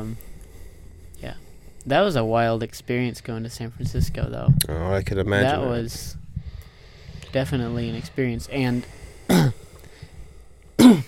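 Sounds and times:
faint low murmur: 0.0 - 11.0
speech: 1.2 - 6.2, 7.3 - 9.6
person coughing: 9.3 - 9.6, 10.8 - 11.0.

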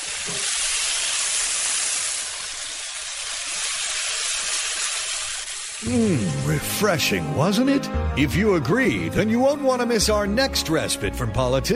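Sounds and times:
bacon sizzling in a pan: 0.0 - 7.1
speech: 5.8 - 11.7.

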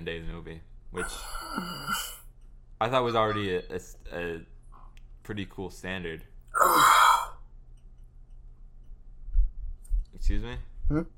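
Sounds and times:
speech: 0.0 - 2.2, 2.8 - 4.5, 5.2 - 6.8, 10.2 - 11.1
breathy yawn: 1.0 - 2.2, 6.5 - 7.4.

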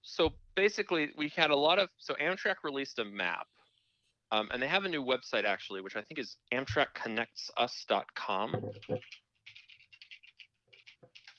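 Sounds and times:
speech: 0.2 - 3.6, 4.3 - 9.2
fingers typing on a computer keyboard: 8.9 - 11.3.

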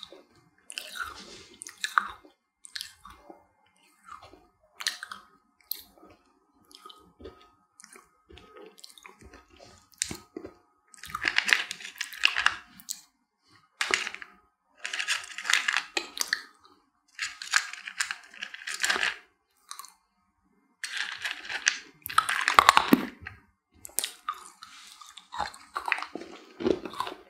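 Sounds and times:
dry crunching and biting of hard sugar candies: 0.7 - 3.1, 6.7 - 13.0, 13.8 - 20.0, 20.8 - 27.2.

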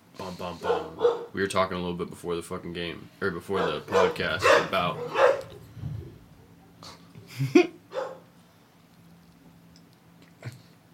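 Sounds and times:
speech: 0.2 - 5.4, 7.4 - 7.8
dog yelping: 0.6 - 1.3, 3.6 - 5.5, 7.9 - 8.3.

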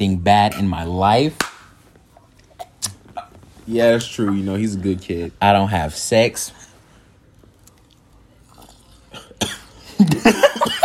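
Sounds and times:
speech: 0.0 - 1.5, 3.7 - 6.6, 9.4 - 10.7
person coughing after choking on vape pen smoke: 9.1 - 10.8.

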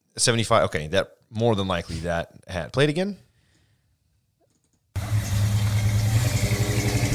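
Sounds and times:
speech: 0.2 - 3.2
1975 Chevy K10 truck engine starting and rumbling: 5.0 - 7.1.

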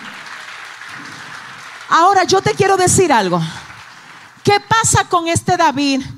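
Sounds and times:
audience applause: 0.0 - 4.5
speech: 1.9 - 3.6, 4.4 - 6.1.

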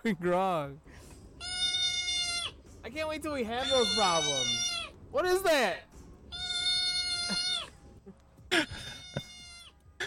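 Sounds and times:
speech: 0.0 - 1.1, 2.9 - 5.9, 7.3 - 7.5
cat meowing from a played video: 1.4 - 2.6, 3.6 - 4.9, 6.3 - 7.7, 8.9 - 9.8.

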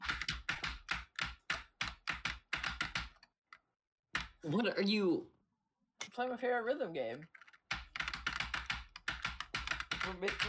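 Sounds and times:
rapid loud typing on a computer keyboard: 0.0 - 4.4, 7.2 - 10.4
speech: 4.4 - 5.4, 6.2 - 7.4, 10.1 - 10.4.

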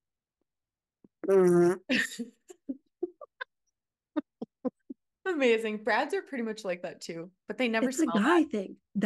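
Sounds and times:
mouth-made fart noise: 1.1 - 1.9
speech: 1.3 - 2.4, 5.3 - 9.0.

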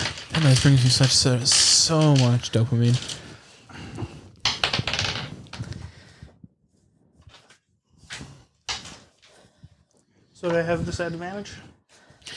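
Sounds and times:
dice rolling on a tabletop: 0.0 - 3.2, 4.4 - 5.8, 8.7 - 9.1
speech: 0.4 - 3.2, 10.4 - 11.8.

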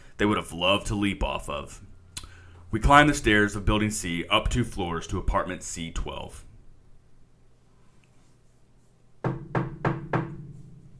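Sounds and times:
speech: 0.2 - 1.9, 2.7 - 6.5
knocks on the wooden door of an apartment: 9.2 - 10.8.

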